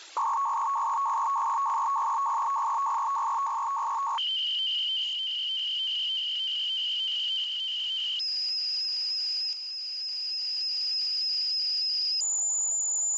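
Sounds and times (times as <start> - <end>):
FSK selective calling radio signal scanning four channels: 0.0 - 8.3.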